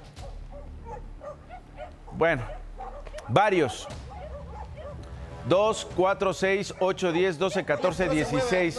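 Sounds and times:
several dogs barking and yipping: 0:00.1 - 0:05.2, 0:06.6 - 0:07.9
speech: 0:02.2 - 0:02.6, 0:03.3 - 0:04.1, 0:05.4 - 0:08.7.

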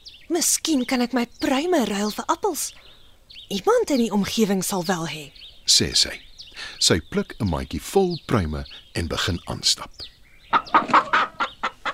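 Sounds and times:
speech: 0:00.3 - 0:02.9, 0:03.5 - 0:11.0
chickens clucking: 0:05.7 - 0:11.9.

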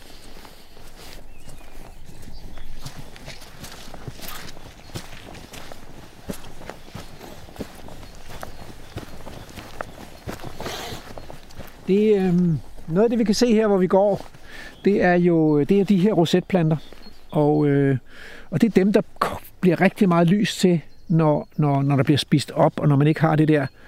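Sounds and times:
hooves of several herd horses walking over ground: 0:00.0 - 0:17.6
speech: 0:11.9 - 0:23.8.

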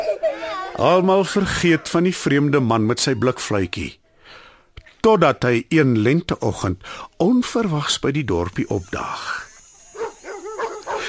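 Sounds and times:
speech: 0:00.2 - 0:04.0, 0:05.0 - 0:09.4
dogs barking with short yappy barks and whiny yelps: 0:09.9 - 0:11.0.

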